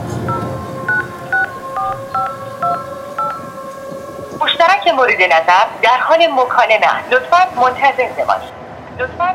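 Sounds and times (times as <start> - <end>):
telephone keypad dialing tones: 0.3 - 3.5
speech: 5.0 - 9.3.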